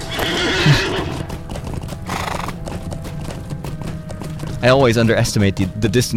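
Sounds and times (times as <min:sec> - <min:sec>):
horse whinnying in a video game: 0:00.0 - 0:02.6
horse hooves clopping in a video game: 0:00.0 - 0:06.1
speech: 0:04.6 - 0:06.1.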